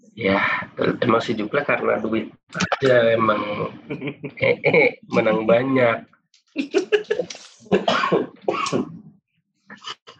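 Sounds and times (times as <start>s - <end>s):
laughter: 0.2s - 6.0s, 6.6s - 9.0s
speech: 0.2s - 6.9s
person coughing in rough hacking fits: 7.0s - 8.9s.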